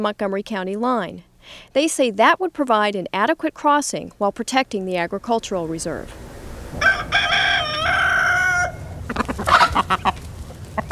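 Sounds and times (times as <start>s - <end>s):
speech: 0.0s - 7.2s
chickens clucking and squawking: 6.7s - 10.9s
rooster crowing: 6.8s - 10.0s.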